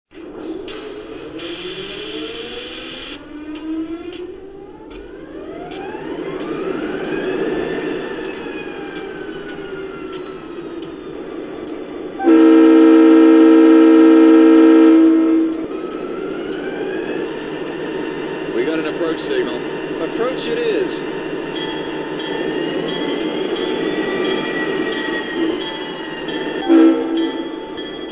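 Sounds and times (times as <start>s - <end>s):
SD40-2 diesel locomotive: 0.1s - 28.1s.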